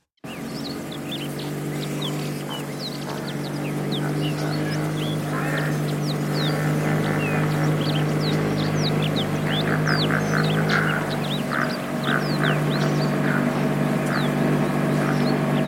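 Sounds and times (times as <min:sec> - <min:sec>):
birds chirping: 0:00.0 - 0:15.6
motorboat engine droning in narrow reed channels: 0:00.1 - 0:15.6
ducks quacking: 0:00.3 - 0:15.6.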